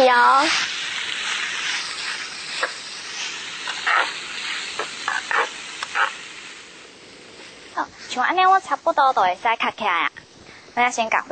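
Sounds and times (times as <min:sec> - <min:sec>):
stirring scrapes in a pan: 0:00.0 - 0:07.8
food sizzling and frying in a pan: 0:00.0 - 0:11.2
speech: 0:00.1 - 0:00.7, 0:08.2 - 0:10.2, 0:10.8 - 0:11.2.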